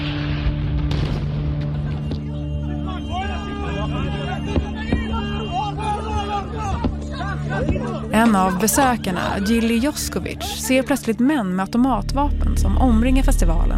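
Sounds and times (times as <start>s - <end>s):
heavy boom of a bomb striking at a festival near the Gaza–Israel border: 0.0s - 2.1s
anxious crowd chatter at a festival: 1.8s - 11.0s
speech: 8.2s - 13.7s.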